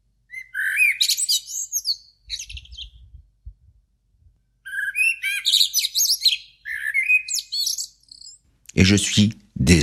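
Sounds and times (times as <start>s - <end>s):
blackbirds singing before dawn in a city: 0.3s - 3.2s, 4.6s - 9.3s
speech: 8.8s - 9.8s.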